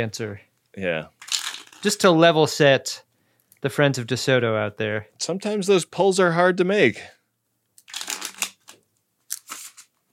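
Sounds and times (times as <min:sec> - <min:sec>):
speech: 0:00.0 - 0:07.2
riffle shuffle of a deck of cards: 0:07.8 - 0:10.0.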